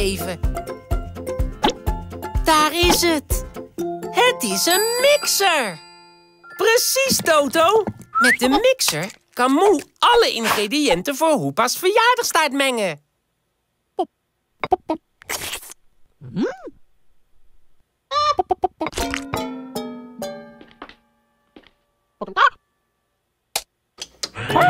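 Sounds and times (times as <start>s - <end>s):
speech: 0.0s - 0.8s, 2.5s - 5.8s, 6.6s - 13.0s, 14.0s - 15.6s, 16.2s - 16.7s, 18.2s - 19.6s, 22.2s - 22.6s
chicken in a kitchen mixer clucking and squawking: 18.1s - 18.9s.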